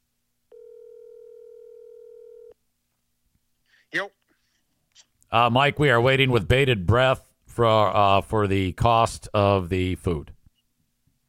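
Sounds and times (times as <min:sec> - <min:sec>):
steady electronic telephone tone as a call goes to voicemail: 0:00.5 - 0:02.6
speech: 0:03.9 - 0:04.2, 0:05.0 - 0:10.4.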